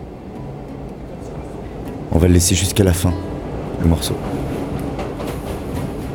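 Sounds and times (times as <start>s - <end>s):
Paris metro train rumbling as it pulls away: 0.0s - 6.1s
speech: 2.1s - 4.4s.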